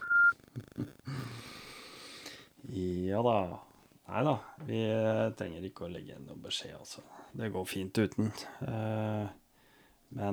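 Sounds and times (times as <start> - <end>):
voicemail beep tone: 0.0 - 0.3
soft breathing: 1.1 - 2.6, 9.5 - 10.1
speech: 2.8 - 9.4, 10.1 - 10.3.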